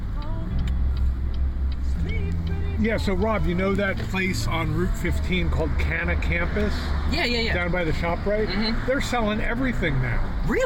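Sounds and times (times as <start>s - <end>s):
faint ticking: 0.0s - 5.4s
road noise from inside a moving car: 0.0s - 10.6s
speech: 2.8s - 10.6s.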